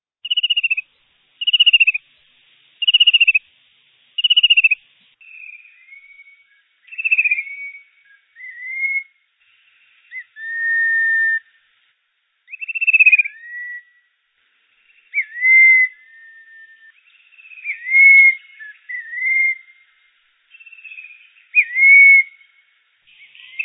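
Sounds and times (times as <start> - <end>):
fan-tailed cuckoo calling: 0.2 - 2.0, 2.8 - 3.4, 4.2 - 9.1, 10.1 - 11.5, 12.5 - 14.0, 15.1 - 19.8, 20.5 - 22.5, 23.1 - 23.6.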